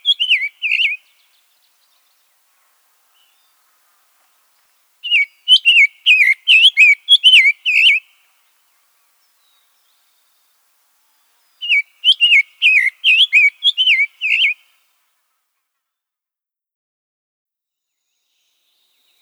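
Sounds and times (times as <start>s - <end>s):
Summer tanager song: 0.0s - 2.1s, 5.0s - 8.2s, 11.4s - 14.7s.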